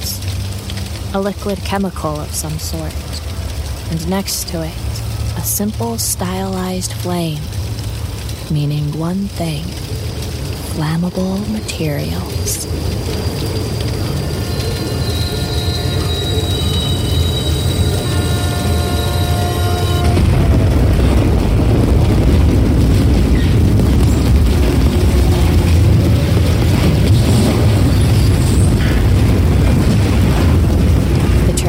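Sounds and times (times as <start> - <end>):
heavy rumble of a train: 0.0 - 31.6
speech: 1.2 - 3.2, 3.9 - 7.6, 8.5 - 10.0, 10.8 - 13.9
high sustained metallic squealing of a train: 13.1 - 20.3.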